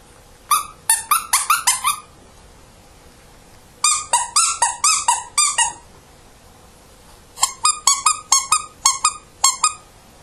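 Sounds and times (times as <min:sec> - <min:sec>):
dog's soft plush squeaky toys squeaking: 0:00.5 - 0:02.1, 0:03.8 - 0:05.9, 0:07.4 - 0:09.8.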